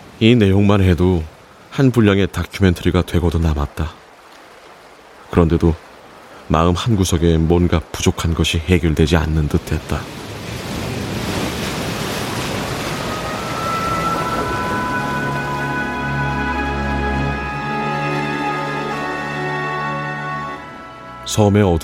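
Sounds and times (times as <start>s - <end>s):
speech: 0.2s - 4.0s, 5.3s - 5.8s, 6.5s - 10.2s, 21.4s - 21.8s
ocean waves breaking on an island shore: 3.8s - 21.8s
sustained tonal drone: 12.7s - 21.8s.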